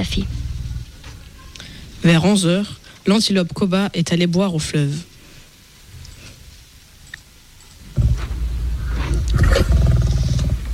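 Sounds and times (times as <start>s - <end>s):
speech: 0.0s - 0.4s, 2.0s - 5.1s
lion roaring: 8.0s - 10.7s.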